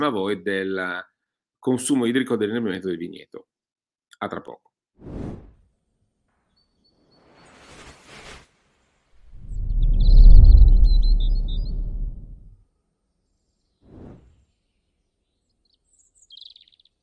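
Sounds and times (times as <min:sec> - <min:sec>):
speech: 0:00.0 - 0:03.5, 0:04.2 - 0:05.5
faint high bird chirps in a morning vineyard: 0:06.4 - 0:07.6, 0:09.4 - 0:12.4, 0:13.2 - 0:17.0
loud rushing whoosh of wind or movement: 0:09.2 - 0:12.5.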